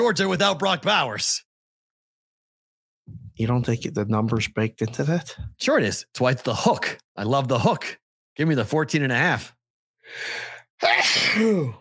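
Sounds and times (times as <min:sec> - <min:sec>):
speech: 0:00.0 - 0:01.5, 0:03.1 - 0:11.7
person sneezing: 0:10.8 - 0:11.7.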